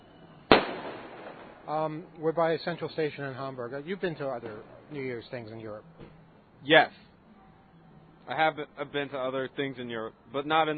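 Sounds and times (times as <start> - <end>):
firecracker exploding at a New Year's celebration by a central station: 0.5 - 2.0
speech: 1.7 - 7.0, 8.3 - 10.7.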